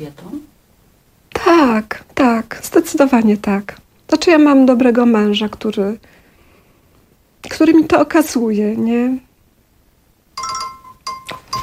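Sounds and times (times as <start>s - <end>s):
speech: 0.0s - 0.5s, 1.5s - 6.2s, 7.4s - 9.2s
bright electronic chiming phone ringtone: 10.4s - 11.6s
phone ringing with an incoming call: 10.4s - 11.6s.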